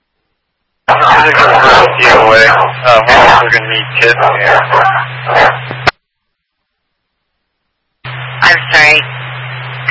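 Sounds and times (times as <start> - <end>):
steady low electrical hum: 0.0 - 9.8
dog barking: 0.9 - 5.6
speech: 1.2 - 5.8, 8.8 - 9.2.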